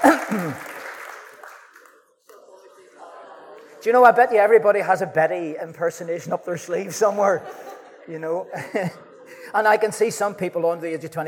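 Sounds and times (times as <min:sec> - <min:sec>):
laughter: 0:00.0 - 0:00.8, 0:02.4 - 0:04.3, 0:06.9 - 0:10.3
audience clapping: 0:00.0 - 0:02.4
speech: 0:00.3 - 0:00.7, 0:03.8 - 0:11.2.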